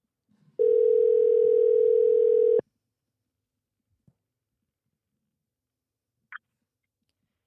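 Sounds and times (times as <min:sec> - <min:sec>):
loud steady telephone dial tone as a phone call is placed: 0:00.6 - 0:02.6.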